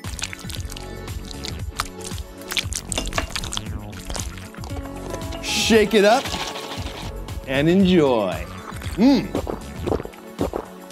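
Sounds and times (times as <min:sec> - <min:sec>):
water pouring from a measuring cup: 0:00.0 - 0:07.2
speech: 0:05.7 - 0:06.4, 0:07.5 - 0:09.5.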